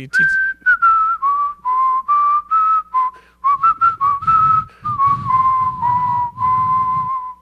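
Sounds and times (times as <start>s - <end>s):
speech: 0.0s - 0.5s
person whistling a lilting tune: 0.1s - 7.3s
low rumbling noise: 3.0s - 7.3s.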